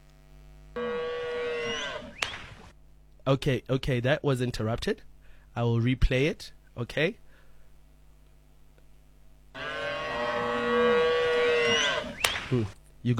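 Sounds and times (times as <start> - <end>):
cow mooing: 0.8 - 2.7, 9.6 - 12.8
speech: 3.3 - 7.2, 12.5 - 13.1.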